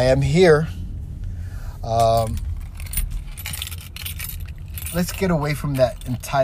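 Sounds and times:
speech: 0.0 - 0.8, 1.8 - 2.5, 4.9 - 6.4
low rumbling like an idling vehicle: 0.0 - 6.4
bunch of keys jangling: 1.9 - 6.4.

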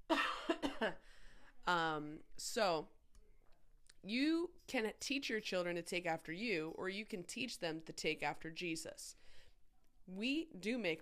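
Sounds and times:
person coughing harshly: 0.1 - 1.0
speech: 0.1 - 3.0, 4.0 - 9.4, 10.1 - 10.9.

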